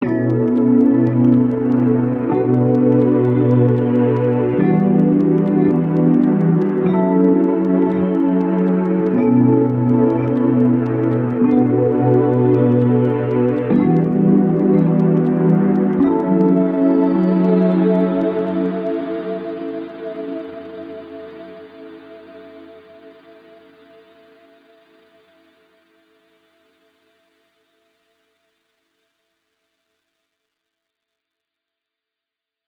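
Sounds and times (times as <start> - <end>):
chord progression amaj9 bm7 em9 fm7 at 105 bpm: 0.0 - 22.9.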